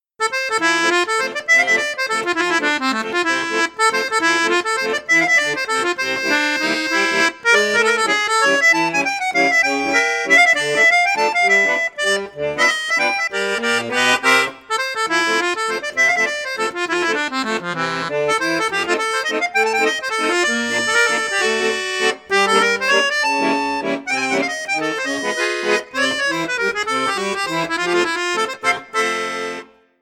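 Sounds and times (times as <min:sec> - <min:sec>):
accordion playing a swing waltz in flute register: 0:00.2 - 0:30.0.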